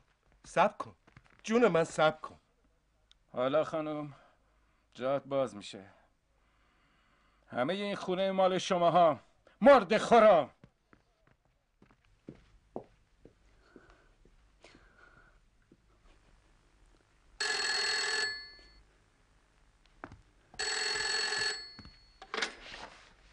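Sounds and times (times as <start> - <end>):
rustling and shuffling: 0.0 - 2.2, 10.6 - 17.1, 21.7 - 23.3
speech: 0.4 - 2.4, 3.3 - 4.2, 5.0 - 6.0, 7.5 - 10.6
telephone ringing with electronic trill: 17.4 - 18.8, 20.6 - 22.6.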